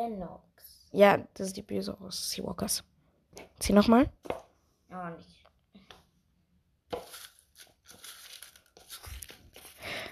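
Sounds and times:
speech: 0:00.0 - 0:05.4
plastic packaging crinkling and rustling: 0:07.0 - 0:10.0.

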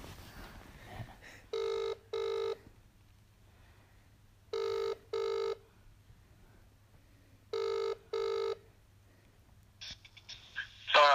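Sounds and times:
quiet humming telephone line: 0:01.5 - 0:02.6, 0:04.5 - 0:05.6, 0:07.5 - 0:08.6
telephone ringback tone on an outgoing call: 0:01.5 - 0:02.6, 0:04.5 - 0:05.6, 0:07.5 - 0:08.6.

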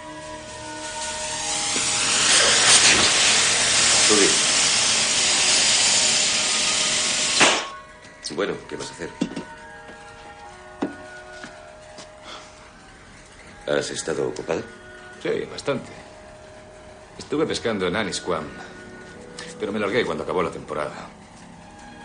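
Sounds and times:
welding hiss in a workshop: 0:00.0 - 0:07.8
speech: 0:08.4 - 0:09.5, 0:13.7 - 0:16.0, 0:17.3 - 0:18.8, 0:19.6 - 0:21.2.

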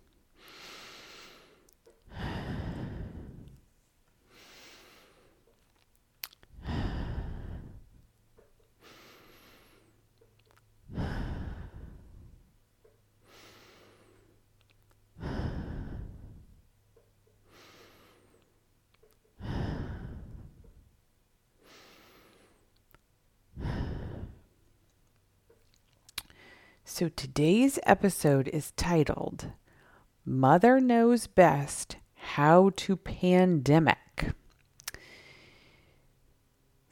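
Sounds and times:
slow deep human breathing in through the nose and out through the mouth: 0:00.4 - 0:05.6, 0:06.5 - 0:10.1, 0:10.8 - 0:12.5, 0:13.2 - 0:14.5, 0:15.2 - 0:16.7, 0:17.4 - 0:18.6, 0:19.4 - 0:20.9, 0:21.6 - 0:22.8, 0:23.5 - 0:24.7, 0:26.3 - 0:26.8, 0:29.6 - 0:30.1, 0:34.9 - 0:36.1
speech: 0:26.9 - 0:29.6, 0:30.3 - 0:34.4.

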